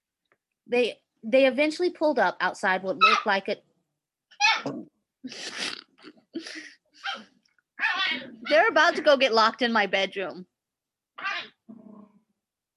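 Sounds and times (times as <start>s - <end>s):
speech: 0.7s - 3.7s, 5.2s - 5.6s, 8.5s - 10.5s
small dogs making squeaky bursts: 3.0s - 3.3s, 4.4s - 4.7s, 11.2s - 11.6s.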